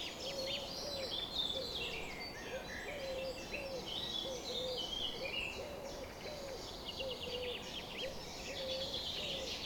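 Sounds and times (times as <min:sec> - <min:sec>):
bird cooing in a summer morning dawn chorus: 0:00.2 - 0:09.6.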